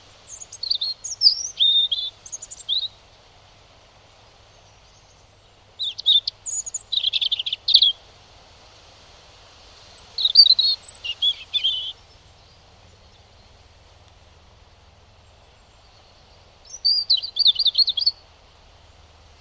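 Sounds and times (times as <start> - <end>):
European robin song: 0.0 - 3.3, 4.4 - 8.1, 9.7 - 18.3.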